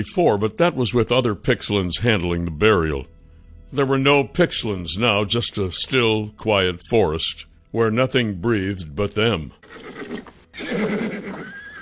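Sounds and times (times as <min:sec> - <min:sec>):
speech: 0:00.0 - 0:11.0
horse nickering near a forest pond: 0:09.6 - 0:11.7.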